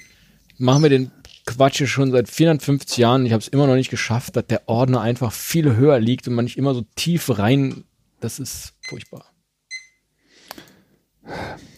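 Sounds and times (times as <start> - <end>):
alarm clock electronic beep: 0.0 - 0.9, 8.8 - 9.0, 9.7 - 10.0
speech: 0.6 - 9.3
breathy exhales: 10.3 - 11.7.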